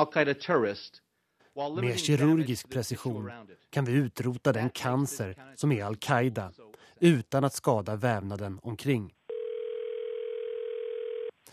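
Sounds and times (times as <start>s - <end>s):
speech: 0.0s - 1.0s, 1.6s - 9.2s
telephone ringing tone of an outgoing call to the Pentagon: 9.3s - 11.4s.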